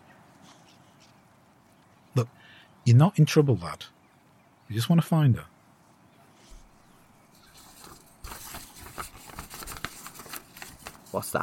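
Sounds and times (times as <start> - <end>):
speech: 2.2 - 4.0, 4.7 - 5.5, 11.2 - 11.4
paper being crumpled and handled: 7.4 - 11.4.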